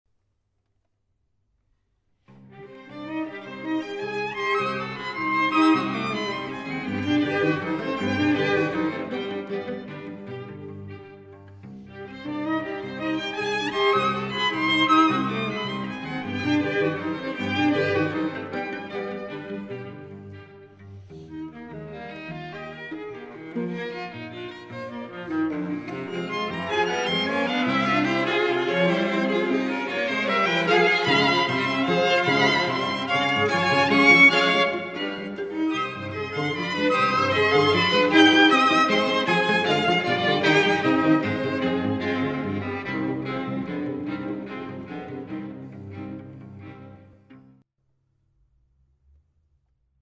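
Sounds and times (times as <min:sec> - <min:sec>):
string quartet playing: 0:02.4 - 0:47.6.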